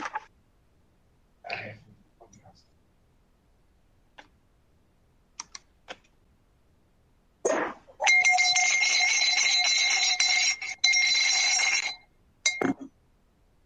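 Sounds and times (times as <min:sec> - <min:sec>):
chamber bell of the Dutch House of Representatives ringing: 0:08.0 - 0:12.8.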